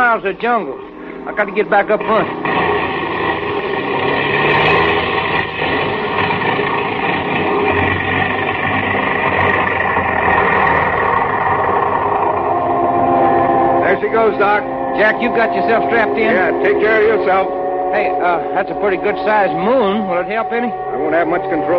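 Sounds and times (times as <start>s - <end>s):
speech: 0.0s - 2.6s, 14.1s - 21.7s
aircraft engines roaring: 0.0s - 21.7s.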